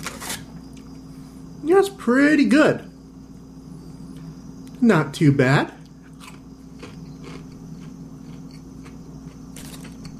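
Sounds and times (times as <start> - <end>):
steady low hum: 0.0 - 10.1
speech: 1.6 - 2.9, 4.8 - 5.8
biting and chewing crisp fried food dipped in barbecue sauce: 5.8 - 10.1.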